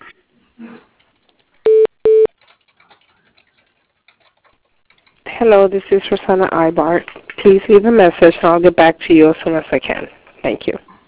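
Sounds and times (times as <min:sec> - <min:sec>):
telephone line tones as an office call is transferred to voicemail: 0:01.7 - 0:02.3
speech: 0:05.4 - 0:10.9.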